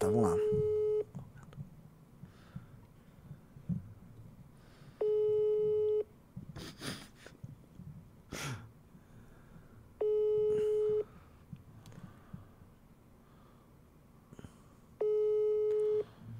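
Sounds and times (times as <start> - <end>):
faint room noise: 0.0 - 16.3
phone line ringing tone on the caller's end: 0.4 - 1.1, 5.0 - 6.1, 10.0 - 11.1, 15.0 - 16.1.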